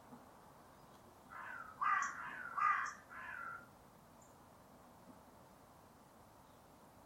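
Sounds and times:
faint steady hiss: 0:00.0 - 0:07.0
bird making hoarse nasal caws: 0:01.3 - 0:03.7.

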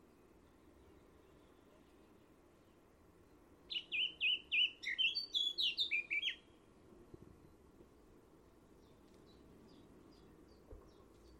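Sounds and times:
bird chirping: 0:00.8 - 0:06.6, 0:08.8 - 0:11.3.

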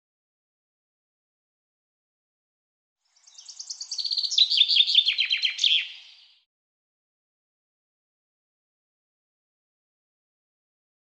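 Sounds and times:
common chaffinch song: 0:03.0 - 0:06.5.

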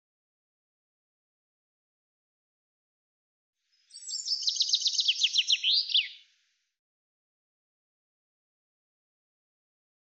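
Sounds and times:
common chaffinch song: 0:03.7 - 0:06.4.

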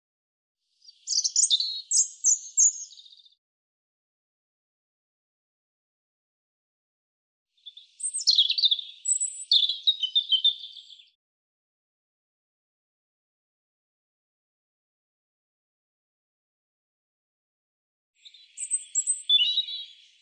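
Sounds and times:
European robin song: 0:00.7 - 0:03.4, 0:07.6 - 0:11.2, 0:18.2 - 0:20.1.

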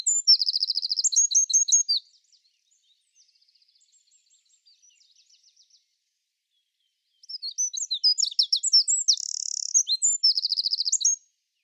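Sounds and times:
bird calling with chirps: 0:00.0 - 0:02.2, 0:07.2 - 0:11.2.

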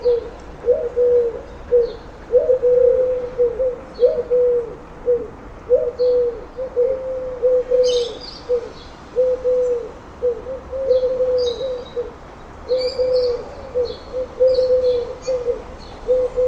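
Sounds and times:
bird cooing: 0:00.0 - 0:16.4.

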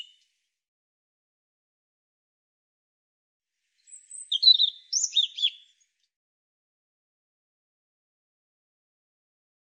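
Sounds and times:
European robin singing a high tinkling phrase: 0:00.0 - 0:00.2, 0:03.8 - 0:05.9.

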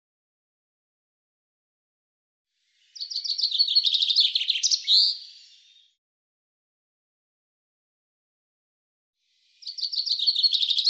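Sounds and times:
Common chaffinch song: 0:02.6 - 0:05.9, 0:09.3 - 0:10.8.

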